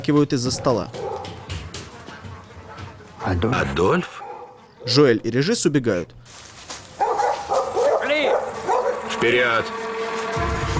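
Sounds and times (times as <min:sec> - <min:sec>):
speech: 0:00.0 - 0:01.1, 0:03.3 - 0:04.2, 0:04.8 - 0:06.4, 0:09.2 - 0:09.8, 0:10.4 - 0:10.7
hunting dogs barking, yipping and whining during a chase: 0:00.4 - 0:01.5, 0:03.2 - 0:05.4, 0:06.9 - 0:09.1.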